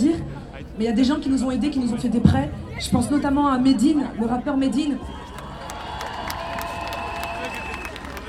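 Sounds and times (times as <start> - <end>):
speech: 0.8 - 5.3
large crowd cheering and shouting at an event with a truck stage: 4.5 - 8.2
scattered clapping: 5.3 - 8.2.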